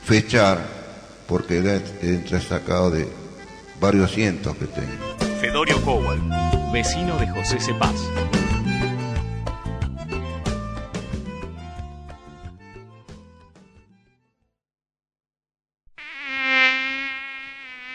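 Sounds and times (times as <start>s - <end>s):
speech: 0.1s - 3.2s, 3.8s - 8.4s
mosquito buzzing: 1.0s - 9.2s, 15.9s - 17.9s
musical passage: 1.1s - 14.6s.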